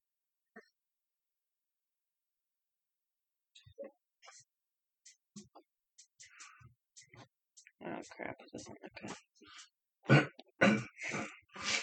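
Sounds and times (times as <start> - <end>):
speech: 7.8 - 11.3
person coughing to clear the throat: 10.1 - 11.8.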